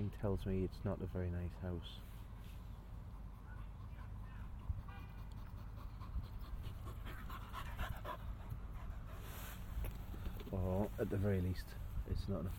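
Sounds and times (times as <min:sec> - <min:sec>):
speech: 0:00.0 - 0:02.2, 0:10.7 - 0:12.5
dog panting while playing with a ball: 0:03.0 - 0:09.7.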